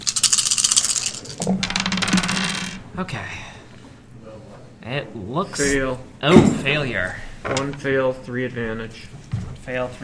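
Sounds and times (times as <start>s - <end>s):
several dice clattering across a hard tabletop: 0.0s - 2.8s
speech: 3.0s - 3.4s, 4.8s - 10.0s.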